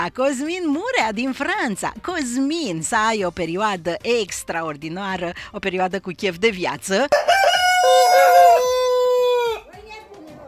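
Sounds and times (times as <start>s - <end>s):
speech: 0.0s - 8.7s
hens clucking: 7.1s - 9.7s
rooster crowing: 7.1s - 9.7s.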